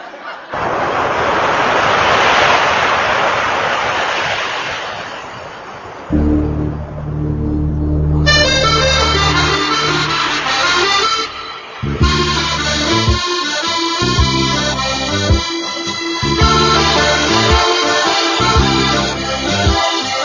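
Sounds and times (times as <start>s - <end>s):
loud steady wash of ocean surf: 0.0s - 7.4s, 8.2s - 14.0s, 15.4s - 20.2s
gentle sustained music: 6.2s - 20.2s.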